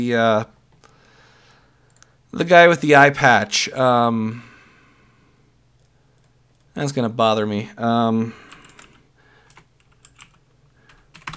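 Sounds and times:
speech: 0.0s - 0.6s, 2.3s - 4.5s, 6.8s - 8.4s
clacky computer keyboard typing: 8.5s - 11.3s.

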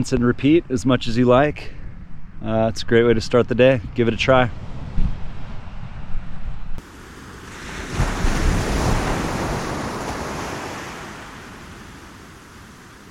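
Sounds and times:
speech: 0.0s - 1.8s, 2.4s - 4.7s
gusty wind buffeting the microphone: 0.0s - 13.0s
ocean waves breaking: 6.8s - 13.0s.

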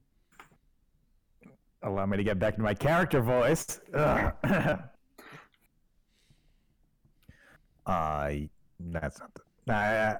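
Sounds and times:
speech: 1.8s - 4.9s, 7.9s - 10.1s
person coughing: 4.0s - 5.4s
throat clearing: 4.0s - 5.4s.

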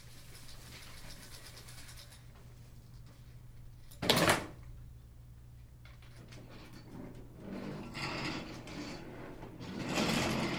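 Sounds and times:
school desks scraping and rattling as instruments: 7.5s - 10.5s.

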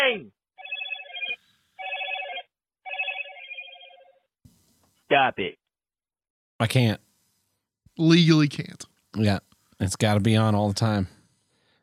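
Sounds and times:
telephone ringing with a warbling electronic trill: 0.6s - 4.3s
speech: 5.1s - 5.6s, 6.6s - 7.0s, 8.0s - 11.2s.

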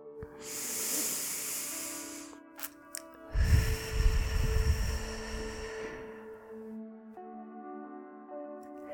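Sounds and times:
soft sustained musical tones: 0.0s - 8.9s
deep breaths in through nose, out through mouth: 0.3s - 2.4s, 3.3s - 6.7s.

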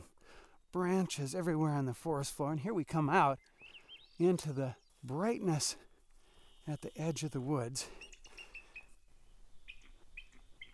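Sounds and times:
soft outdoor ambience: 0.0s - 10.7s
speech: 0.7s - 3.5s, 4.2s - 5.9s, 6.6s - 8.1s
bald eagle high-pitched chirping call: 3.4s - 5.5s, 6.1s - 10.7s.

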